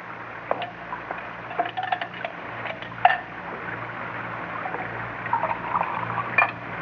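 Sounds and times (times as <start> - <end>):
cocktail with a dash of bitters being poured: 0.5 - 3.4, 4.6 - 6.7
glass and utensils clinking while a cocktail is mixed: 1.5 - 3.3.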